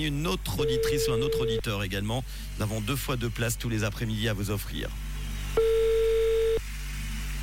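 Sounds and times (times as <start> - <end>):
speech: 0.0 - 5.7
faint low hum on a quiet telephone line: 0.0 - 7.4
telephone ringback tone on an outgoing call to Cheseaux-sur-Lausanne: 0.6 - 1.6, 5.6 - 6.6.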